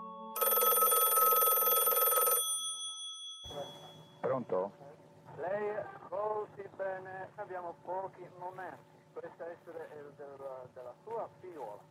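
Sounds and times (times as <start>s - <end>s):
telephone bell ringing: 0.4s - 4.2s
speech: 4.4s - 11.8s.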